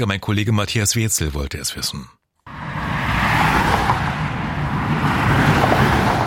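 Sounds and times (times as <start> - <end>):
speech: 0.0 - 2.2
highway traffic rolling past: 2.5 - 6.2.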